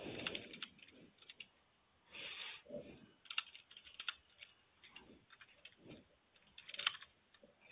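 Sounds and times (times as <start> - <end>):
computer keyboard typing while notes are entered: 0.1 - 1.5, 3.2 - 7.4.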